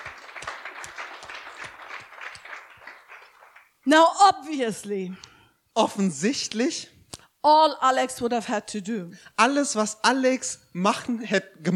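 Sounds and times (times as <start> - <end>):
audience applauding: 0.0 - 3.8
speech: 3.9 - 11.7.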